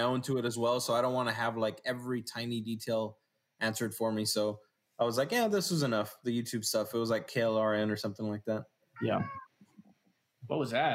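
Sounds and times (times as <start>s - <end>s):
speech: 0.0s - 9.4s, 10.4s - 10.9s
pet cat meowing: 9.0s - 9.5s.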